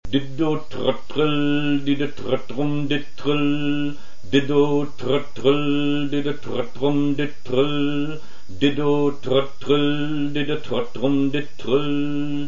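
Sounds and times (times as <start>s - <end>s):
person singing a rhythm: 0.0s - 12.4s.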